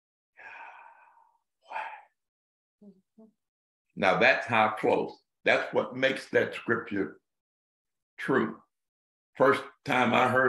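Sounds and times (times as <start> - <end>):
person breathing: 0.4 - 2.2
speech: 2.8 - 7.2, 8.2 - 8.6, 9.4 - 10.4.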